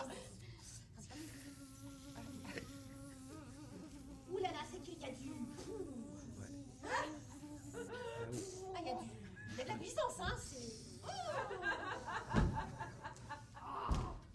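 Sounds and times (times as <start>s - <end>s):
mosquito-like buzzing drone: 0.0s - 11.1s
laughter: 6.8s - 10.0s, 11.0s - 14.0s.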